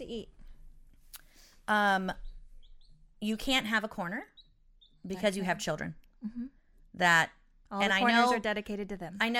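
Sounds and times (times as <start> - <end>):
speech: 0.1 - 0.4, 1.7 - 2.2, 3.2 - 4.3, 5.0 - 9.3
small pet bird giving a harsh buzzy squawk: 2.1 - 3.0.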